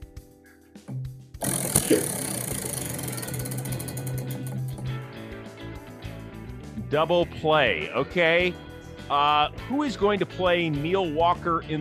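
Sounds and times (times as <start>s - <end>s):
prize wheel spinning with ratcheting clatter: 1.4s - 5.0s
speech: 1.9s - 2.2s, 6.9s - 11.7s.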